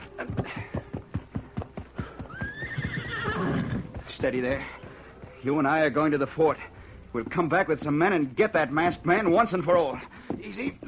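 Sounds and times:
horse hooves clip-clopping: 0.0s - 10.8s
man in boots running: 0.0s - 10.8s
horse whinnying: 2.0s - 4.1s
speech: 4.2s - 4.8s, 5.4s - 10.8s.

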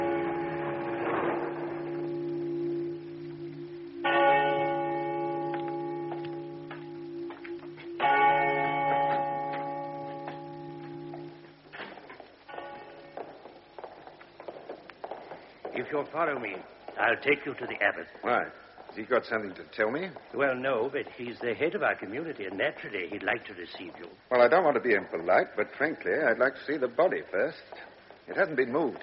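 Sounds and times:
church bells ringing out in a peal: 0.0s - 14.0s
speech: 15.9s - 29.0s.

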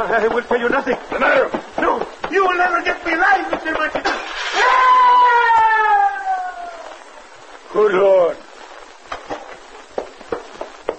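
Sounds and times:
speech: 0.0s - 5.0s
man screaming: 4.5s - 7.0s.

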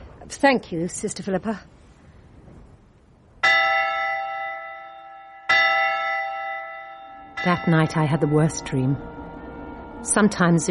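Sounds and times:
speech: 0.3s - 1.8s, 7.4s - 9.2s, 10.0s - 10.6s
church bell tolling for Vespers: 3.4s - 10.6s.

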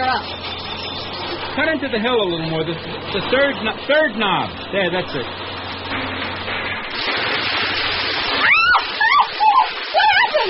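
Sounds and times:
water gushing from a broken water pipe: 0.0s - 10.4s
speech: 1.6s - 5.4s
high wailing meow-like cries: 8.4s - 10.4s.

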